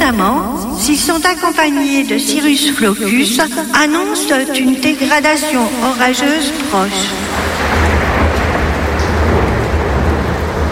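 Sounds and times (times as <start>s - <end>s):
deep continuous rumble of thunder: 0.0s - 10.6s
steady heavy rain: 0.0s - 10.6s
speech: 0.1s - 7.7s.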